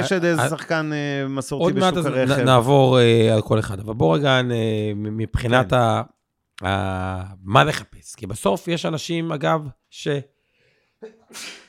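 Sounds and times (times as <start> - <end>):
speech: 0.0 - 10.3, 11.0 - 11.6
person sneezing: 11.0 - 11.6.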